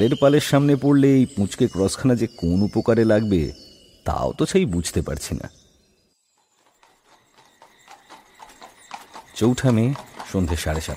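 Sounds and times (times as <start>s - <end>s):
speech: 0.0s - 5.6s, 9.4s - 10.9s
horse-drawn carriage hooves clip-clopping on a rough mountain road: 6.3s - 10.9s.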